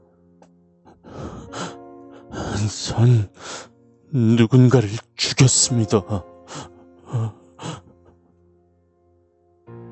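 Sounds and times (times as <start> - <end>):
man breathing heavily and raggedly: 0.9 - 2.6, 3.3 - 3.8, 6.5 - 8.2
speech: 2.6 - 6.7.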